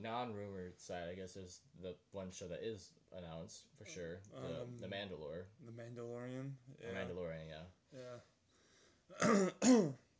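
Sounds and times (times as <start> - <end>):
speech: 0.0 - 8.3, 9.1 - 10.0
person clearing throat: 9.1 - 10.0.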